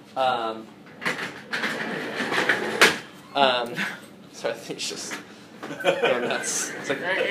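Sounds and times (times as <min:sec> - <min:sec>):
speech: 0:00.2 - 0:00.8, 0:03.4 - 0:07.2
chair squeaking: 0:01.0 - 0:03.1
laughter: 0:05.6 - 0:07.2.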